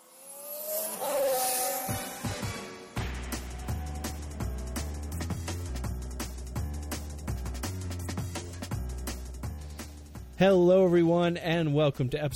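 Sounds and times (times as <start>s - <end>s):
high-pitched racing car engine whining past: 0.0s - 5.0s
loud steady beat of bass-heavy music: 1.9s - 11.7s
speech: 10.4s - 12.3s.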